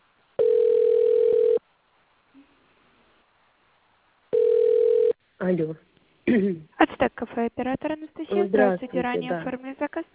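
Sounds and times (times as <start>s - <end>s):
telephone ringback tone while placing a call to a cafe: 0.4s - 1.6s, 4.3s - 5.2s
speech: 5.5s - 10.1s.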